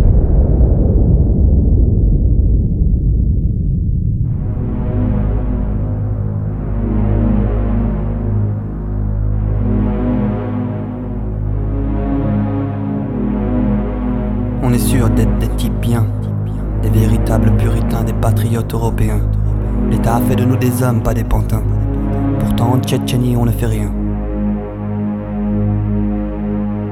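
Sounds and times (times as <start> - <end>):
deep roaring atomic bomb explosion: 0.0 - 6.7
loud low throbbing drone: 0.0 - 26.8
speech: 18.7 - 19.4, 20.0 - 21.8, 22.4 - 24.0.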